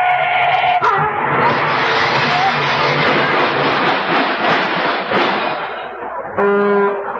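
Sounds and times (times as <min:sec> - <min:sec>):
harsh rushing screech and clatter of a car collision: 0:00.0 - 0:06.2
loud blaring car horn blast: 0:06.4 - 0:07.1.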